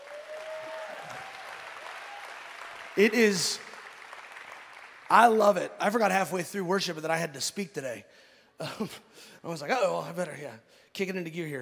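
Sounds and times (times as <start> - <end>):
faint tonal whoop: 0.0 - 2.8
loud voice or cheer: 0.0 - 5.3
audience applause for the worship team: 0.0 - 5.5
speech: 3.0 - 3.7, 5.1 - 11.5.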